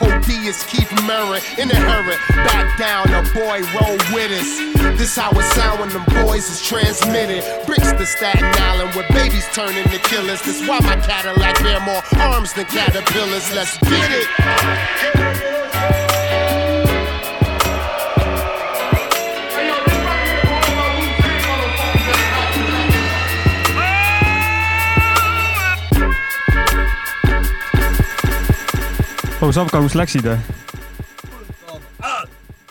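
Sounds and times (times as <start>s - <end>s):
hip-hop song: 0.0s - 32.6s
speech: 0.4s - 15.2s, 29.4s - 30.6s.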